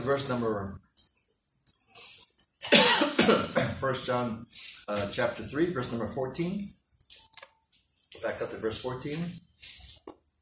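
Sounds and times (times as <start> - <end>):
speech: 0.0 - 0.8, 2.7 - 6.8, 8.2 - 9.8
loud cough: 2.6 - 3.9.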